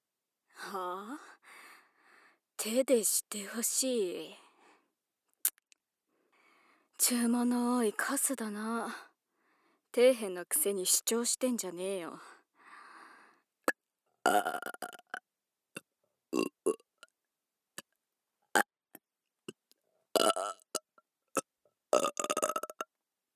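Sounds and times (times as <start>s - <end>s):
speech: 2.6s - 4.4s, 7.0s - 9.1s, 10.0s - 12.3s, 14.3s - 15.0s
loud drawn-out burps: 14.3s - 15.2s, 16.4s - 16.9s, 20.2s - 20.8s, 21.4s - 22.9s.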